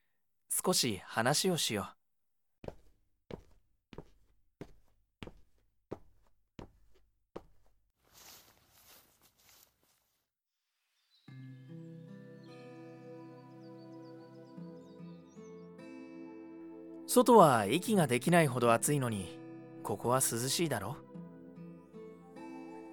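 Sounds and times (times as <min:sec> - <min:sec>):
speech: 0:00.6 - 0:02.0, 0:17.2 - 0:21.1
steady footsteps: 0:02.6 - 0:10.2
small birds chirping softly in a courtyard while hand-fed: 0:10.8 - 0:15.8
calm musical ambience: 0:11.2 - 0:22.9.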